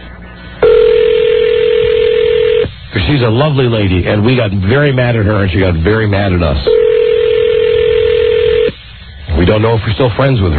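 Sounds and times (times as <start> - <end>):
low noise: 0.0 - 10.5
telephone dial tone: 0.6 - 2.7, 6.7 - 8.7
speech: 3.0 - 6.8, 9.4 - 10.5.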